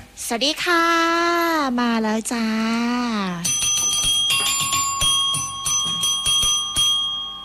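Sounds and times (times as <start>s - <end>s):
speech: 0.3s - 3.6s
bell ringing rapidly: 3.4s - 7.4s.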